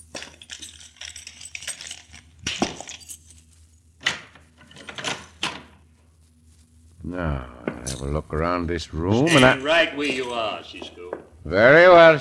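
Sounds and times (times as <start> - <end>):
keys jingling and rattling: 0.0 - 2.3
speech: 7.1 - 12.1.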